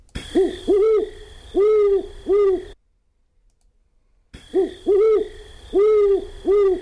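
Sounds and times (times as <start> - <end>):
female great horned owl hooting: 0.2 - 2.8, 4.4 - 6.8.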